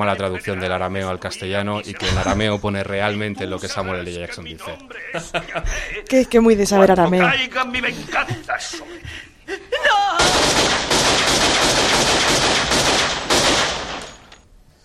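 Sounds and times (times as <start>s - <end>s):
laughter: 0.0s - 6.3s, 7.0s - 10.3s
speech: 0.0s - 8.9s
rapid gunfire in a film shootout: 10.2s - 14.2s.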